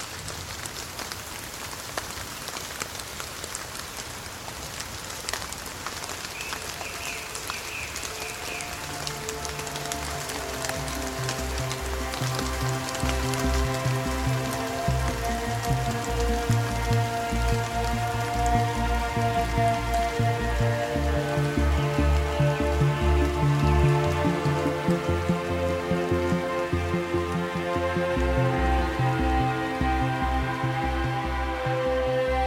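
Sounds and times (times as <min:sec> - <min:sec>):
sharper rain drips: 0:00.0 - 0:31.4
steady rain falling outdoors: 0:00.0 - 0:32.4
soft tonal music: 0:06.9 - 0:32.4.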